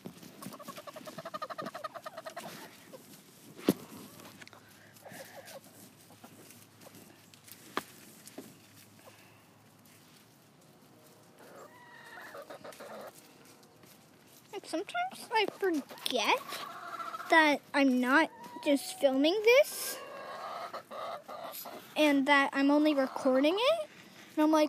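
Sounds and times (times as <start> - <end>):
chickens clucking: 0.2 - 9.2, 11.3 - 13.4, 14.5 - 23.9
chicken squawks: 0.4 - 3.0, 5.0 - 6.3, 11.4 - 13.2, 15.9 - 17.4, 19.8 - 22.0
speech: 14.7 - 16.7, 17.3 - 20.0, 22.0 - 23.8, 24.4 - 24.6.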